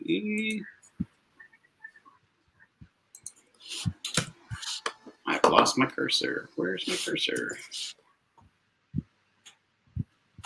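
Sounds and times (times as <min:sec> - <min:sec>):
speech: 0:00.1 - 0:00.8, 0:05.3 - 0:08.0
computer keyboard typing into a search bar: 0:03.1 - 0:05.0.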